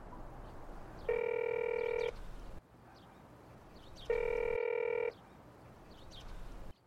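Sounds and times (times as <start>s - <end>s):
loud steady electronic telephone ringing tones: 1.1s - 2.1s, 4.1s - 5.1s.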